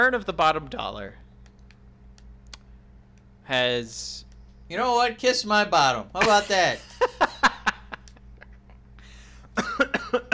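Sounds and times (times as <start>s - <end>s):
speech: 0.0s - 1.2s, 3.5s - 7.3s
laughter: 6.2s - 8.8s
person coughing: 9.6s - 10.3s.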